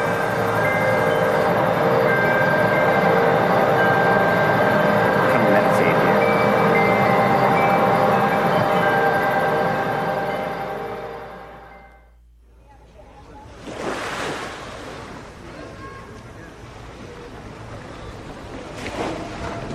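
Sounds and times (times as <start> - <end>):
short tonal sound: 0.0 - 12.2
shallow water washing against a pier beside an old paddle steamboat in San Francisco: 13.3 - 19.7.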